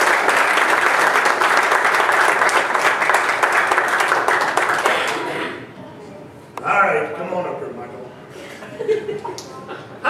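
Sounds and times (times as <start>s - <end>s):
sustained applause from a sizable crowd: 0.0s - 5.6s
laughter: 8.3s - 10.0s.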